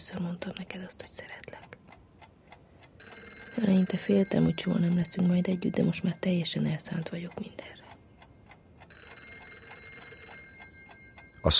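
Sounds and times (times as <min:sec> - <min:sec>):
speech: 0:00.0 - 0:01.7, 0:03.6 - 0:07.8
faint ticking: 0:00.0 - 0:11.5
telephone bell ringing: 0:03.0 - 0:06.3, 0:08.8 - 0:11.5.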